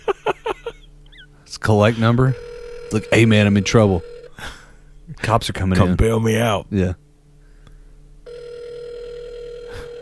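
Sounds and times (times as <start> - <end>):
laughter: 0.0 - 0.9
speech: 1.5 - 7.0
steady electronic phone ringing tone: 2.3 - 4.3, 8.3 - 10.0.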